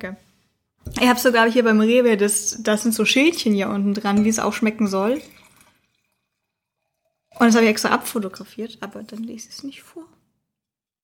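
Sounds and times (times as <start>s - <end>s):
speech: 0.0s - 5.4s, 7.4s - 10.2s
wine being poured into a glass: 3.9s - 9.5s.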